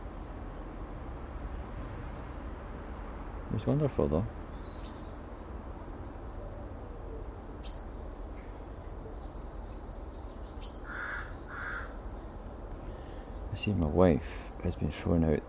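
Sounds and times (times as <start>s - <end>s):
outdoor noise: 0.0s - 15.4s
speech: 3.5s - 5.0s, 13.6s - 15.4s
rook cawing: 10.7s - 12.1s.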